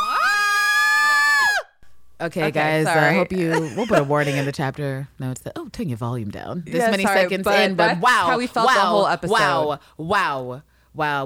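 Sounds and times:
several voices screaming together loudly: 0.0 - 1.7
speech: 2.2 - 11.2.

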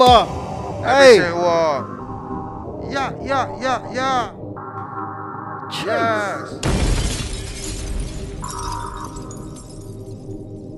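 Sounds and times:
speech: 0.0 - 2.0, 2.8 - 4.4, 5.7 - 7.2
glass window being smashed: 6.6 - 10.0.

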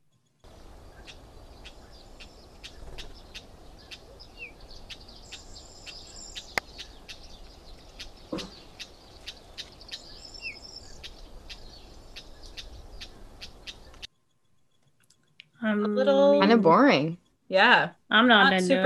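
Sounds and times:
constant hiss of outdoor noise: 0.0 - 18.8
Cyprus wheatear calling: 0.4 - 14.1
speech: 15.8 - 18.8.

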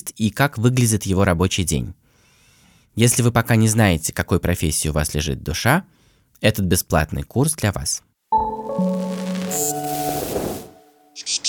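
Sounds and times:
speech: 0.1 - 2.0, 3.0 - 8.4
short tonal opening: 8.4 - 11.2.

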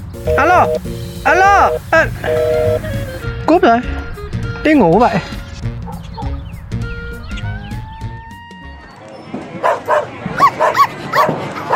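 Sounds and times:
speech: 0.2 - 4.0, 4.6 - 5.4
dog barking: 5.8 - 6.3, 9.6 - 11.7.

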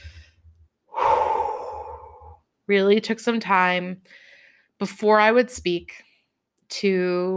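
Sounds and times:
deep breath: 0.0 - 2.4, 4.1 - 4.8
speech: 2.7 - 6.1, 6.7 - 7.3.

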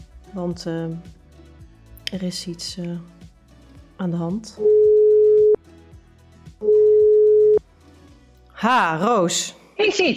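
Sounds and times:
speech: 0.4 - 1.2, 2.1 - 3.2, 4.0 - 4.8, 8.6 - 10.1
telephone ringback tone of an outgoing call: 4.6 - 5.6, 6.6 - 7.6.

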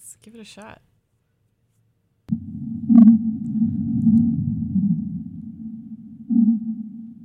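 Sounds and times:
speech: 0.3 - 0.9
whale calls sped up ten times to around 200 hertz: 2.3 - 7.2.

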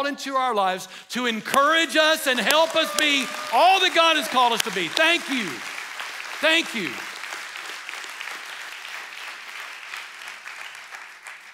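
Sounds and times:
speech: 0.0 - 5.7, 6.4 - 7.1
large audience applause: 2.4 - 11.5.

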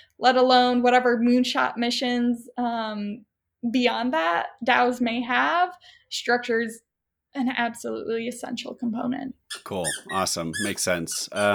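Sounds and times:
speech: 0.2 - 11.5
dog squeaking for attention: 9.5 - 11.5.

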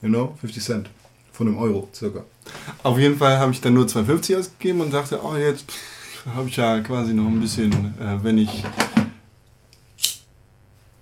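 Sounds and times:
speech: 0.0 - 9.0
airy hiss of a cigarette catching: 10.0 - 10.3
metallic clicks of a lighter being struck: 10.0 - 10.3.

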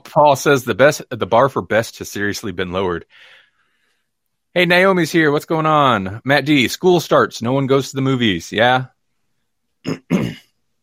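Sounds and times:
speech: 0.1 - 3.4, 4.5 - 9.0, 9.8 - 10.4
throat clearing: 9.8 - 10.6.

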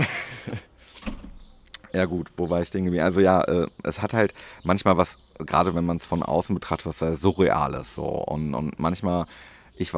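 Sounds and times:
door opening with a soft rushing scrape: 0.9 - 1.5
door shutting with a dull thud: 1.0 - 1.6
speech: 2.0 - 9.9.

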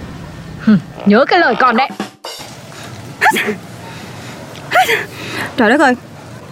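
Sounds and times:
speech: 0.6 - 2.0, 3.2 - 3.7, 4.8 - 6.1
sharp sneezes: 3.2 - 3.6, 4.7 - 5.2.

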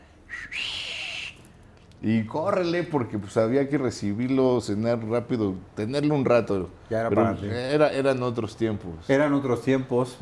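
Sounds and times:
person imitating a father's whistle call: 0.3 - 1.5
speech: 0.4 - 0.7, 2.0 - 10.2.

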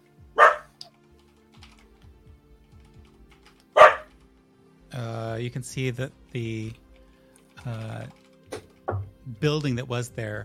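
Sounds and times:
dog barking: 0.3 - 0.7, 3.8 - 4.1
speech: 5.0 - 6.8, 7.6 - 8.2, 9.3 - 10.4.

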